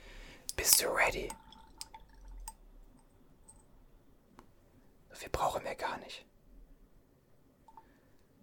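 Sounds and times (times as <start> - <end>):
drops of liquid dripping from a dropper onto hair: 0.5 - 3.7, 7.7 - 8.4
speech: 0.8 - 1.4.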